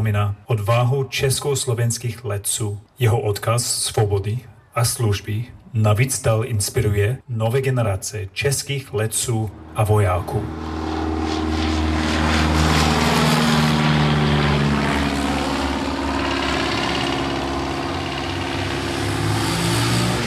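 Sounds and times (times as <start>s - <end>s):
speech: 0.0s - 11.5s
Second World War propeller airplane flying overhead: 9.0s - 20.2s.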